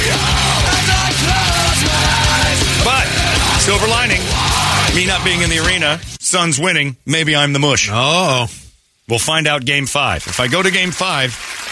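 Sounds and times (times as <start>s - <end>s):
harsh screamed heavy metal vocals: 0.0s - 6.0s
dense distorted heavy metal guitars: 0.0s - 6.3s
speech: 3.7s - 11.6s.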